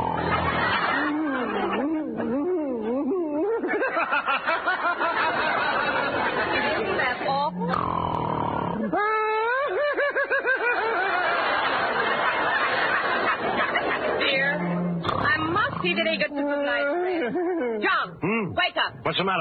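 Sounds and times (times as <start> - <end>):
exaggerated comic snoring by a voice with honks and whistles: 0.0 - 1.4, 7.3 - 9.0, 14.4 - 16.2
laughter: 0.0 - 7.7, 8.7 - 15.4, 16.0 - 18.5
speech: 18.9 - 19.4.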